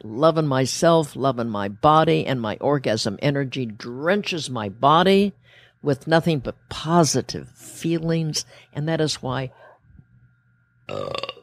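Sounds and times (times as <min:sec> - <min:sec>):
speech: 0:00.0 - 0:09.6, 0:10.9 - 0:11.4
faint steady hum: 0:00.0 - 0:11.4
loud deep belch: 0:10.9 - 0:11.4.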